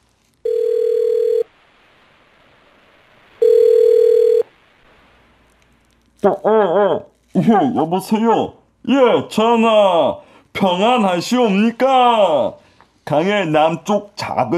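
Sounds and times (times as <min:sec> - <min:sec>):
telephone ringback tone: 0:00.5 - 0:01.5, 0:03.4 - 0:04.5
speech: 0:06.2 - 0:14.5.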